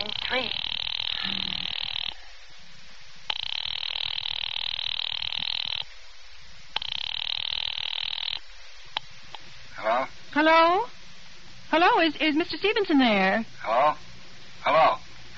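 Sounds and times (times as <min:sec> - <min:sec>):
telephone line ring tone heard through the earpiece: 0:00.0 - 0:02.2, 0:03.3 - 0:05.8, 0:06.8 - 0:08.4
speech: 0:10.4 - 0:11.0, 0:11.7 - 0:15.0.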